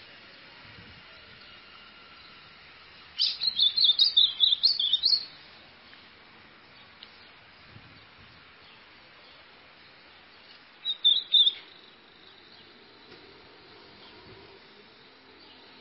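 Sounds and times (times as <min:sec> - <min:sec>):
white-throated seedeater singing high chirped notes: 0:03.1 - 0:05.4, 0:10.8 - 0:12.6.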